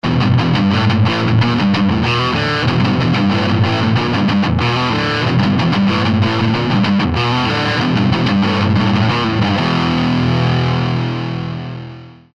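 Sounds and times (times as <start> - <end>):
rhythm guitar through Marshall amplifier: 0.0 - 12.3.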